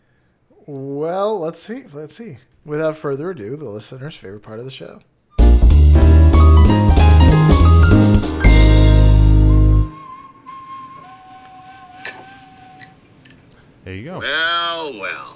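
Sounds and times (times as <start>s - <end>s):
speech: 0.7s - 5.1s, 13.9s - 15.3s
loud music with heavy bass: 5.4s - 9.0s
animated movie character whistling: 6.3s - 13.2s.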